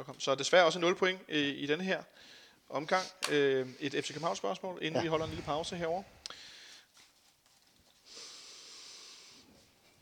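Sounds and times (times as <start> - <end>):
speech: 0.0 - 6.4
deep breaths: 2.1 - 4.4, 5.1 - 7.0, 8.0 - 9.7.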